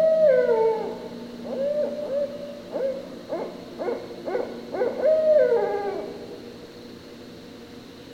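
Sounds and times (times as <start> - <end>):
barred owl calling: 0.0 - 6.4.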